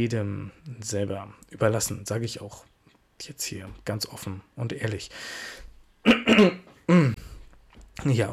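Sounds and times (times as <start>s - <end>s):
speech: 0.0s - 5.6s, 6.3s - 7.3s, 8.0s - 8.3s
person coughing harshly: 6.1s - 7.3s.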